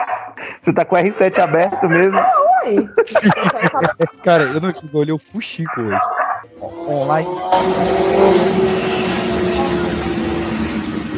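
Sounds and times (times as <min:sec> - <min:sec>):
laughter: 0:00.4 - 0:05.1
speech: 0:00.6 - 0:08.9
motorcycle engine droning outside: 0:06.0 - 0:11.1.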